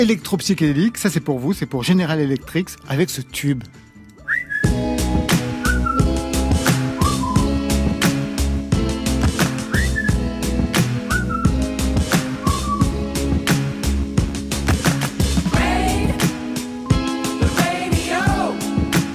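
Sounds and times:
speech: 0:00.0 - 0:03.8
short whistled phrases with a quick upward glide: 0:04.2 - 0:04.8, 0:05.6 - 0:06.2, 0:06.8 - 0:07.6, 0:09.7 - 0:10.2, 0:11.1 - 0:11.6, 0:12.4 - 0:13.0
driving song beat with bass and percussion: 0:04.6 - 0:19.0.

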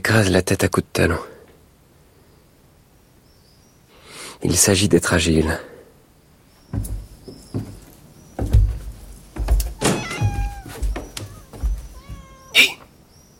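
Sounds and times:
speech: 0:00.1 - 0:01.3, 0:04.5 - 0:05.7
scuffling and thumping: 0:06.7 - 0:12.6
grey cat meowing: 0:09.8 - 0:12.9.

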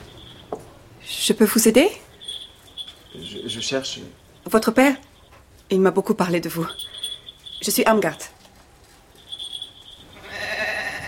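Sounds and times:
speech: 0:01.1 - 0:02.1, 0:03.6 - 0:05.1, 0:05.7 - 0:06.9, 0:07.6 - 0:08.4
goat bleating: 0:10.2 - 0:11.0.

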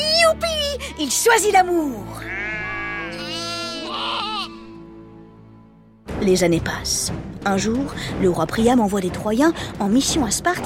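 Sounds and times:
speech: 0:01.0 - 0:02.4, 0:06.2 - 0:10.6
several sheep bleating: 0:02.1 - 0:04.8.

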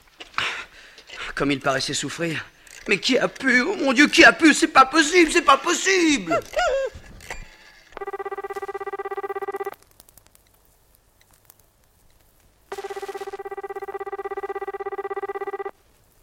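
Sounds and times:
faint noise: 0:00.0 - 0:16.2
speech: 0:01.4 - 0:06.9
telephone ringing with a buzzy electronic trill: 0:07.4 - 0:09.8, 0:12.7 - 0:15.7.

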